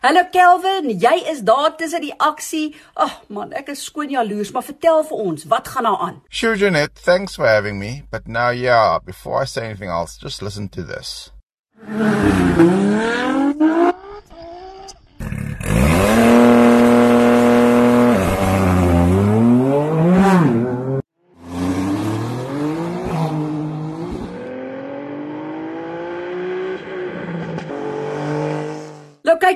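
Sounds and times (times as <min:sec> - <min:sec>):
speech: 0:00.0 - 0:13.3
racing engines screaming up through the gears on a hill climb: 0:11.8 - 0:15.0, 0:15.6 - 0:29.2
tire squeal: 0:11.8 - 0:15.2.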